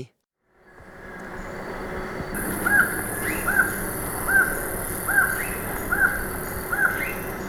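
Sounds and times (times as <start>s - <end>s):
black-mandibled toucan yelping in Ecuador: 2.4s - 7.4s.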